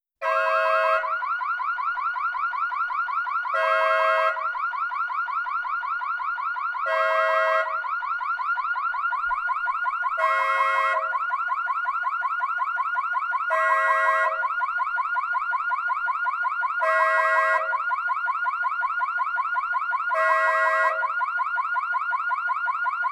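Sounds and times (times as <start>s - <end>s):
car horn: 0.2s - 1.1s, 3.5s - 4.5s, 6.9s - 7.8s, 10.2s - 11.2s, 13.5s - 14.4s, 16.8s - 17.7s, 20.2s - 21.0s
car alarm: 0.2s - 23.0s.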